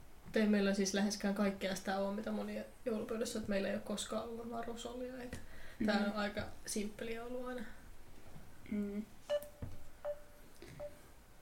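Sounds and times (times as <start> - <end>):
faint hiss: 0.0 - 11.4
speech: 0.4 - 7.8, 8.6 - 9.5
short electronic phone tones beeping: 9.3 - 11.0.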